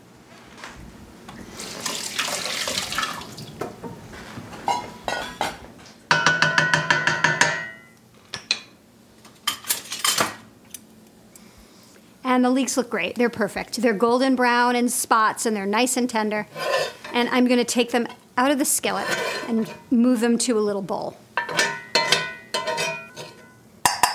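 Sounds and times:
tap water running and splashing at a kitchen sink: 1.6 - 3.8
dishes clinking: 4.5 - 8.8, 21.4 - 24.1
speech: 12.4 - 21.2.

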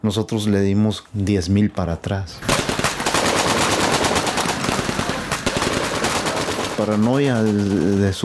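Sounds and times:
speech: 0.0 - 2.7, 6.8 - 8.2
automatic gunfire: 2.4 - 8.2.

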